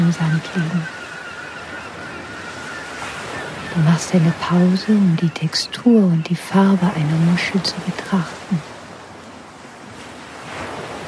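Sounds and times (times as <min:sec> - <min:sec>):
gulls crying over the ocean: 0:00.0 - 0:08.8
ocean surf waves: 0:00.0 - 0:11.0
speech: 0:00.1 - 0:01.0, 0:03.8 - 0:08.7.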